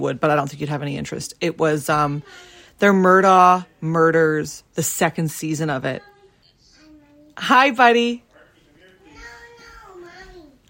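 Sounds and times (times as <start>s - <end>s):
speech: 0.0s - 6.1s, 7.4s - 8.2s
toddler babbling: 6.0s - 7.4s, 9.0s - 10.6s.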